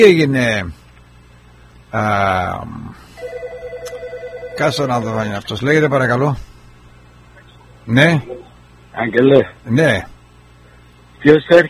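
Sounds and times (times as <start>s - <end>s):
speech: 0.0s - 0.8s, 1.9s - 3.5s, 4.6s - 6.5s, 7.9s - 10.1s, 11.2s - 11.6s
loud buzzy electronic telephone ring: 3.2s - 5.2s.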